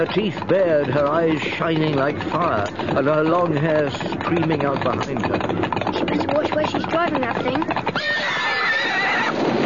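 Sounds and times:
speech: 0.0 - 8.2
horse whinnying: 7.7 - 9.5.

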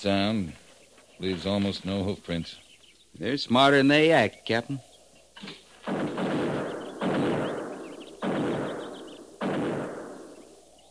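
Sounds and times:
speech: 0.0 - 0.6, 1.2 - 6.0
buffalo gun gunshots: 5.8 - 10.6.

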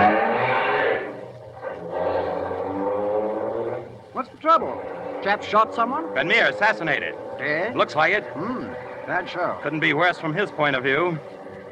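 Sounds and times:
car engine revving and accelerating: 0.0 - 11.7
rushing road noise: 0.0 - 11.7
speech: 4.2 - 11.3.

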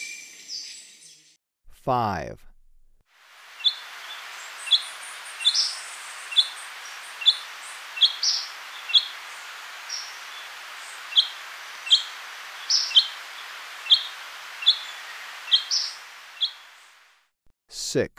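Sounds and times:
speech: 1.9 - 2.5, 17.9 - 18.1
steady hiss: 3.1 - 17.2
Golden-faced Tyrannulet subspecies albigularis calling in Ecuador: 3.6 - 16.6.

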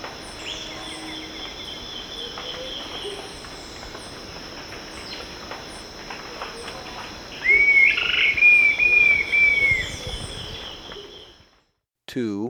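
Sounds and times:
steady insect hum: 0.0 - 11.6
Dusky-tailed flatbill giving a thin whistled trill in Ecuador: 7.4 - 10.1.

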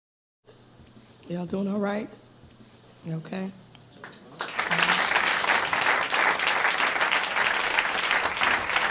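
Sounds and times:
speech: 1.3 - 2.2, 3.0 - 4.2
audience applauding a speaker: 4.3 - 8.8.

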